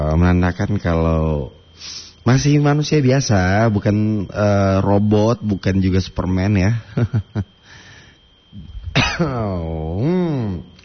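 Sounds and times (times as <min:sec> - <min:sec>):
speech: 0:00.2 - 0:07.6, 0:08.5 - 0:10.7
person coughing: 0:08.9 - 0:09.6
wavering voiced groan: 0:09.1 - 0:10.7.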